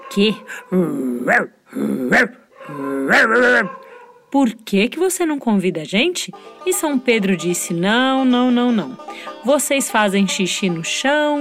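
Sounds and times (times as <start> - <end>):
dog barking: 0.0 - 1.5, 2.1 - 4.2
dog growling low: 0.0 - 4.2
speech: 0.2 - 11.3.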